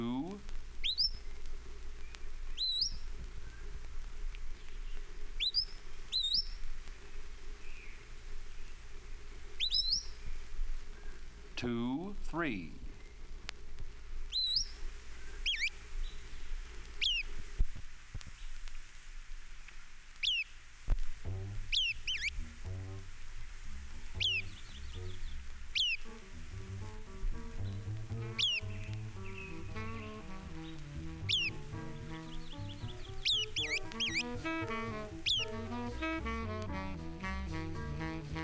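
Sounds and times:
MacGillivray's Warbler singing short bright chirping phrases: 0.0 - 1.4, 2.0 - 3.8, 4.5 - 6.6, 9.6 - 11.2, 14.3 - 17.4, 20.2 - 20.5, 21.4 - 23.0, 23.7 - 38.4
steady low rumbling background: 0.0 - 17.0, 21.1 - 38.4
speech: 11.6 - 12.8.

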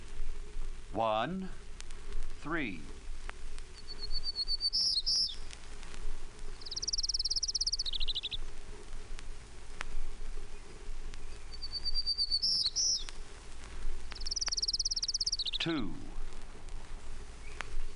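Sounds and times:
steady outdoor hiss: 0.0 - 17.9
speech: 1.0 - 1.6, 2.4 - 3.0, 15.6 - 16.1
Townsend's Warbler singing buzzy high-pitched phrases: 2.4 - 5.5, 6.5 - 8.6, 10.4 - 13.2, 14.0 - 16.3.

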